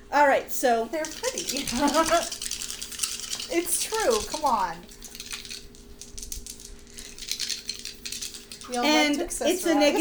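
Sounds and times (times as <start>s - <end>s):
faint hum: 0.0s - 9.9s
speech: 0.2s - 2.4s, 3.5s - 4.9s, 8.7s - 9.9s
dice pool rattling and rolling in a tabletop game: 1.0s - 8.8s.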